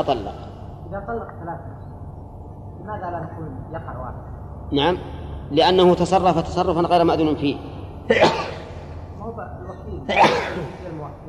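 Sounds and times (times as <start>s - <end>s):
speech: 0.0s - 1.9s, 2.8s - 8.6s, 9.2s - 11.2s
person sneezing: 8.1s - 8.7s, 10.1s - 10.8s.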